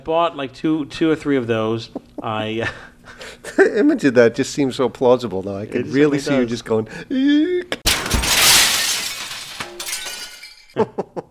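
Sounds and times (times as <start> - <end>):
speech: 0.0 - 7.8, 10.8 - 11.2
thin glass cracking and shattering: 7.9 - 10.8.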